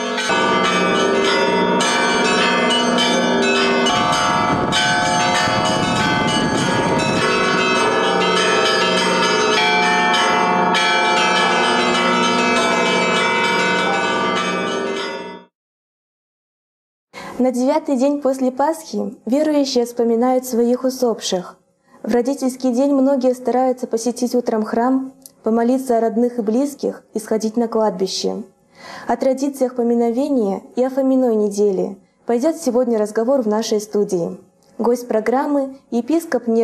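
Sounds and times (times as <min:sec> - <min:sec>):
Orthodox church bells pealing: 0:00.0 - 0:15.5
speech: 0:17.4 - 0:36.6.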